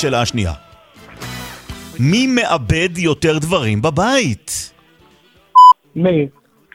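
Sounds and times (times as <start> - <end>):
speech: 0.0 - 0.7, 2.0 - 4.7, 6.0 - 6.4
short electronic beep signalling quiz players to answer: 5.6 - 5.8.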